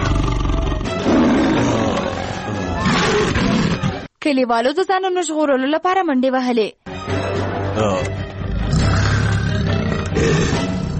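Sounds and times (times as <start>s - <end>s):
tiger roaring: 0.0s - 3.9s, 8.5s - 10.9s
speech: 4.2s - 6.9s, 7.8s - 8.1s.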